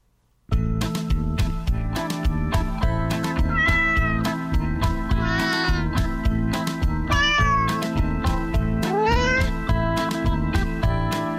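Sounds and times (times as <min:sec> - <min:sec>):
steady rhythmic music backing in a song: 0:00.5 - 0:11.3
cats meowing in a song: 0:03.4 - 0:04.4, 0:05.1 - 0:06.1, 0:07.1 - 0:08.0, 0:08.8 - 0:09.7.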